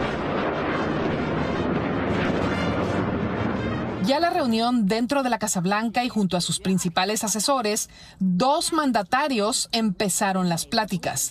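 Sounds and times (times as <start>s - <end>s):
Air Force aircraft flying over a military ceremony: 0.0s - 4.8s
speech: 4.1s - 11.2s.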